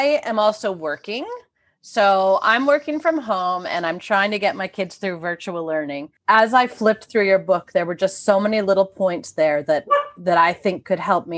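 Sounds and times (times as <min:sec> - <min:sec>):
speech: 0:00.0 - 0:11.3
dog barking: 0:09.9 - 0:10.2.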